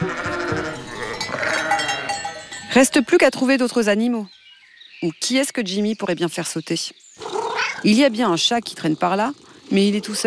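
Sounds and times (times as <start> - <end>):
herd of goats bleating and shuffling: 0.0 - 3.6, 7.2 - 10.2
speech: 2.8 - 4.4, 5.0 - 10.2.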